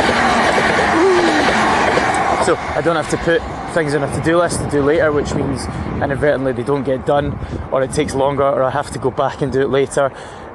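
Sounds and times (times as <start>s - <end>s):
train rumbling past: 0.0s - 6.4s
speech: 2.5s - 10.4s.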